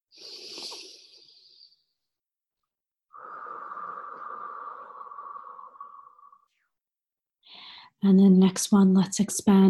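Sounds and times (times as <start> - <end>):
deep breaths drawn in through the nose during a guided breathing exercise: 0.1 - 1.8, 3.2 - 6.4
speech: 8.0 - 9.6.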